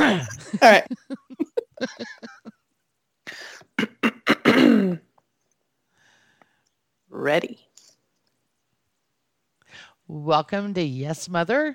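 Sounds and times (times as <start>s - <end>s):
voiced grunts: 0.0s - 0.8s
person clearing throat: 0.0s - 0.9s, 3.8s - 5.1s
laughter: 0.0s - 2.6s
speech: 0.2s - 1.2s, 7.2s - 7.7s, 10.1s - 11.7s.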